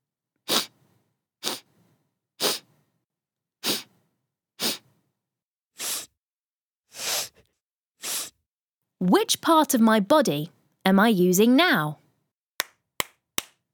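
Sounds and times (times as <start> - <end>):
sniffing through the nose: 0.4 - 2.8, 3.6 - 4.0, 4.6 - 5.0, 5.8 - 6.2, 6.9 - 8.4
speech: 9.0 - 12.0
hand clapping: 12.6 - 13.6.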